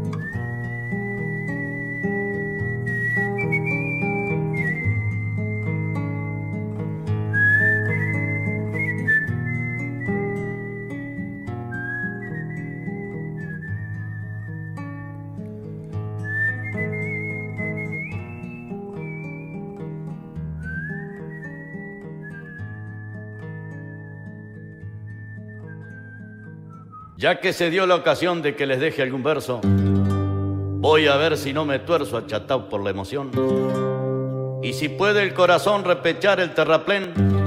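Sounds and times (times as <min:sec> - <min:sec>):
person whistling a slow mournful melody: 0:00.1 - 0:15.0, 0:16.2 - 0:19.9, 0:20.4 - 0:27.2
speech: 0:27.3 - 0:30.1, 0:30.9 - 0:34.0, 0:34.6 - 0:37.3.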